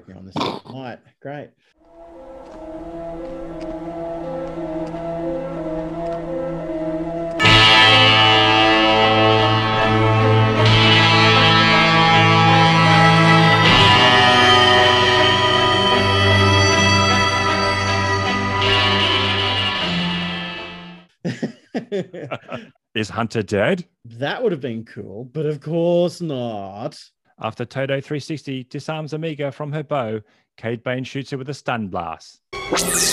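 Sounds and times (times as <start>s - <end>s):
speech: 0.1s - 2.2s, 21.9s - 33.1s
Wild West-style music: 1.9s - 21.0s
laughter: 21.3s - 22.7s.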